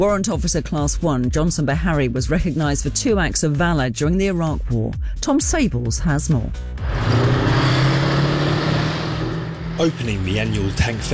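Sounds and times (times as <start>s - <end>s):
speech: 0.0s - 7.5s, 9.8s - 11.1s
Warrior armoured vehicle engine rumbling while driving laps around an arena in Dorset: 6.8s - 11.1s.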